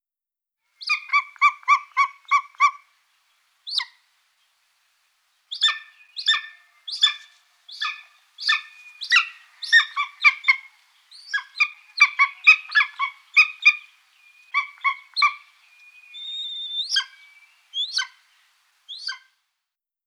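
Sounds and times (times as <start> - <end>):
golden eagle Aquila chrysaetos yelping calls: 0.8 - 2.8, 5.5 - 13.9, 14.5 - 18.2, 18.9 - 19.3.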